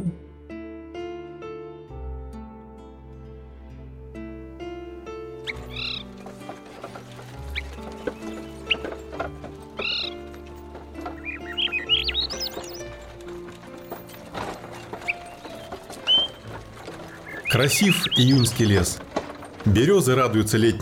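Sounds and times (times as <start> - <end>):
soft sustained music: 0.0 - 20.8
birds chirping and trilling in a June birch forest: 4.2 - 20.8
speech: 17.6 - 19.0, 19.6 - 20.8.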